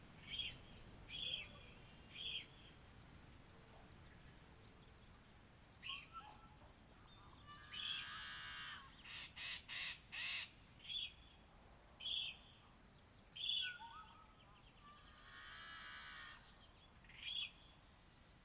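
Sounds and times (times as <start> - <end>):
Yellow-headed Blackbird calls at Columbia National Wildlife Refuge: 0.2 - 2.8, 5.8 - 11.3, 12.0 - 17.9.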